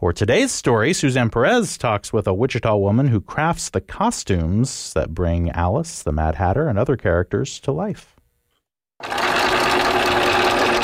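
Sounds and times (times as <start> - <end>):
speech: 0.0 - 8.2
sewing machine running while sewing ballet costumes in Wichita: 9.0 - 10.8.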